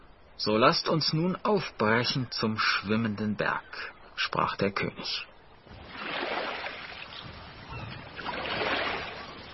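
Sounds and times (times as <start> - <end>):
speech: 0.4 - 5.3
gentle sea waves lapping: 5.4 - 9.5.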